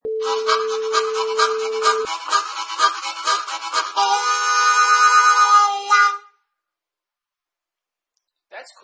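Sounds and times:
harmonica train riff: 0.1s - 6.4s.

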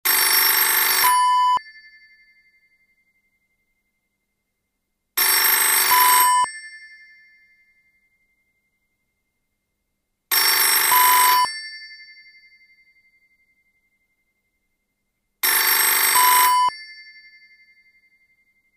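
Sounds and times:
telephone ringing: 0.1s - 1.6s, 5.2s - 6.5s, 10.3s - 11.6s, 15.4s - 16.9s.

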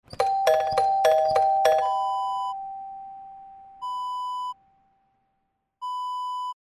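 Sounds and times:
doorbell ding dong: 0.1s - 4.0s.

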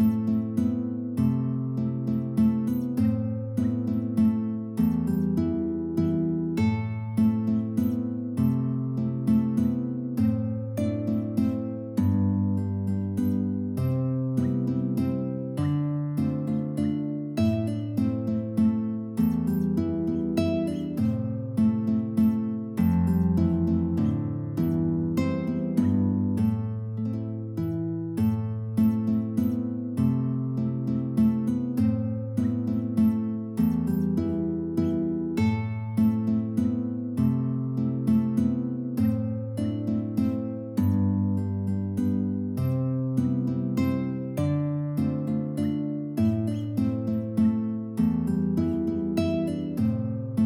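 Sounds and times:
guitar quartet playing: 0.2s - 50.4s.

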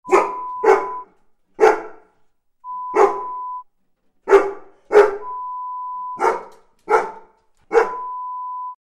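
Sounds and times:
dog barking: 0.0s - 2.2s, 2.9s - 3.4s, 4.2s - 5.4s, 6.2s - 8.1s.

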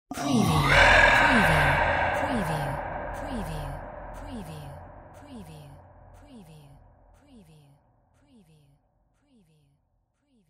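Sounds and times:
spooky sci-fi whispers: 0.1s - 7.8s.

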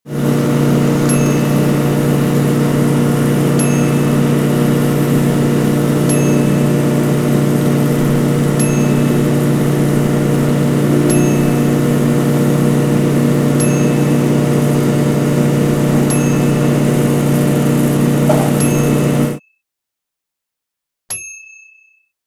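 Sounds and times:
push lawnmower: 0.0s - 19.4s.

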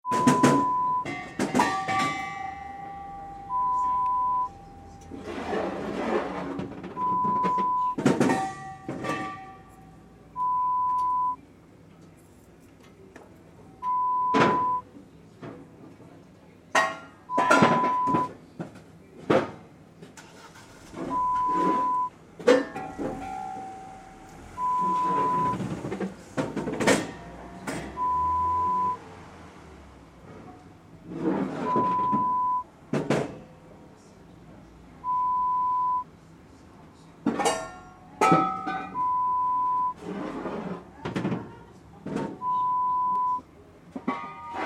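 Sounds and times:
bottle truck: 0.0s - 11.4s, 13.8s - 14.9s, 16.8s - 18.4s, 20.2s - 33.3s, 35.0s - 36.1s, 37.3s - 40.8s, 42.0s - 44.6s.

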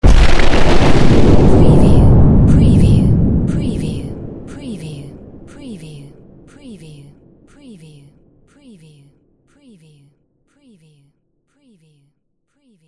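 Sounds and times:
short explosion in a city without debris: 0.0s - 4.5s.

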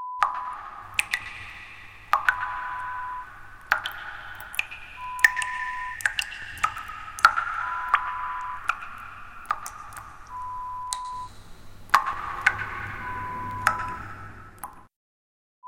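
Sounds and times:
dripping: 0.2s - 14.9s.

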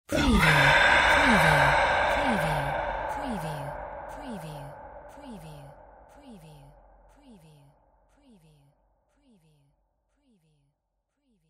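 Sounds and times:
spooky sci-fi whispers: 0.1s - 8.7s.

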